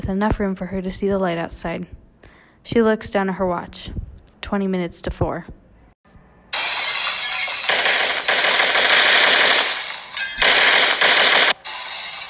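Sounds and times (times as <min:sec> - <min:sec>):
speech: 0:00.1 - 0:02.0, 0:02.6 - 0:05.6
loud automatic gunfire: 0:07.6 - 0:11.6.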